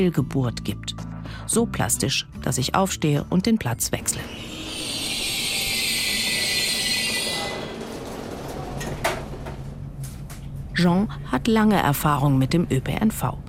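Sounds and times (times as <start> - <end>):
speech: 0.0 - 4.4, 10.8 - 13.4
moving regional train rumble heard from inside a carriage: 4.0 - 13.4.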